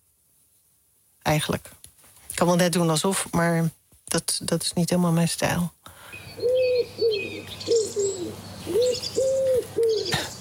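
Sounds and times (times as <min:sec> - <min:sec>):
speech: 0:01.3 - 0:01.8, 0:02.4 - 0:06.5
small birds chirping and twittering: 0:05.5 - 0:10.3
common wood pigeon cooing: 0:06.4 - 0:10.3.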